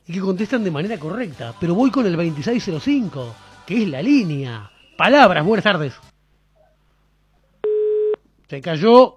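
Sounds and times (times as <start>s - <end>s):
speech: 0.1s - 6.1s, 8.5s - 9.1s
steady telephone tone of a dropped phone call: 7.6s - 8.2s.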